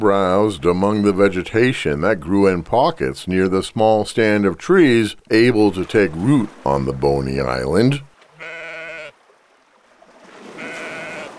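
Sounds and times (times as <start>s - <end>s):
speech: 0.0s - 8.1s
sheep bleating: 8.3s - 9.1s, 10.5s - 11.3s.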